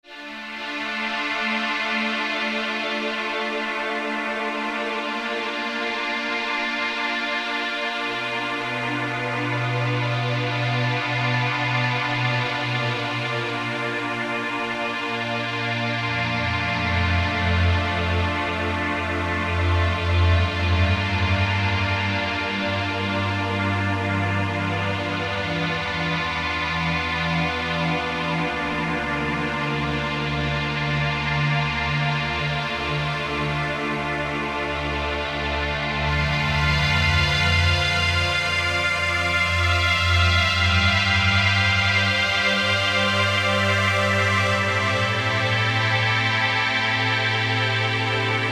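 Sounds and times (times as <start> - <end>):
reflective strings: 0.1 - 48.5.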